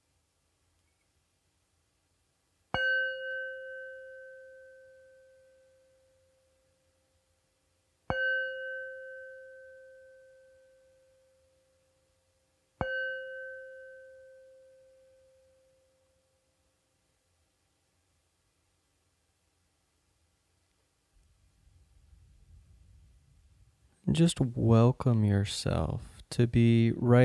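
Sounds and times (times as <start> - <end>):
meditation bell struck: 2.8 - 6.5, 8.1 - 11.6, 12.8 - 16.2
speech: 24.1 - 27.2.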